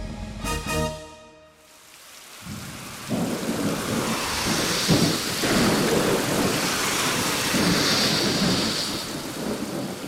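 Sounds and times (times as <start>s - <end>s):
heavy rain on a stormy night: 1.6s - 10.0s
deep rolling rumble of thunder: 2.4s - 10.0s.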